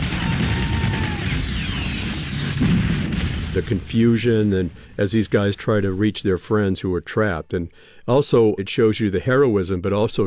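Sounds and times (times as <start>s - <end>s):
whistling projectiles streaking past: 0.0s - 3.7s
relentless gunfire in a war film battle: 0.0s - 5.1s
heavier blast: 0.0s - 6.2s
rumbling RPG explosions in a war film: 0.0s - 6.2s
speech: 3.6s - 10.2s.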